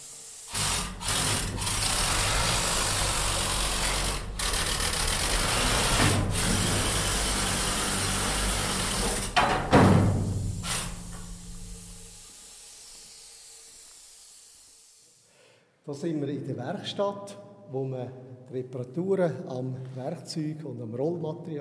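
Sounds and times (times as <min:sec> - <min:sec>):
mining shovel loader with drive and shovel motors roaring: 0:00.5 - 0:11.4
speech: 0:15.9 - 0:21.5.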